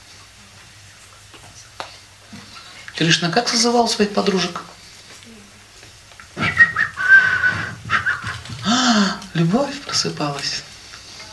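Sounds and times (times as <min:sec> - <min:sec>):
speech: 0:03.0 - 0:04.7, 0:09.4 - 0:10.7
person whistling a flute-like melody: 0:06.4 - 0:08.6.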